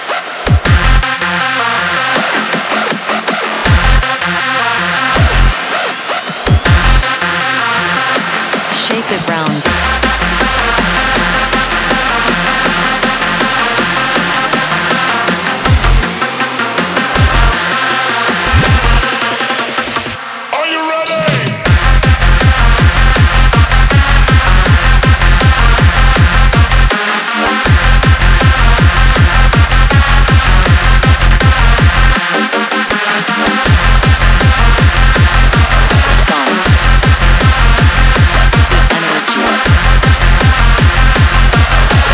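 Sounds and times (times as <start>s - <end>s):
hard dance music bass: 0.0s - 20.2s, 21.2s - 42.1s
relentless pounding four-on-the-floor kick drum in hard dance music: 0.5s - 1.3s, 2.3s - 8.3s, 9.6s - 16.3s, 16.9s - 19.5s, 21.2s - 26.9s, 27.7s - 32.2s, 33.6s - 38.9s, 39.6s - 42.1s
dense bright synths in hard dance music: 8.8s - 20.2s
speech: 9.1s - 9.9s.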